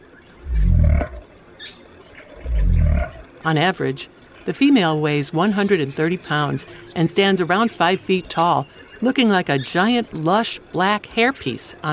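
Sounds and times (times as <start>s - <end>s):
forest ambience: 0.0s - 11.9s
faint bird calls: 0.3s - 3.4s
southern cassowary pig-like grunting on the forest floor: 0.4s - 1.2s, 2.4s - 3.3s
speech: 3.4s - 11.9s.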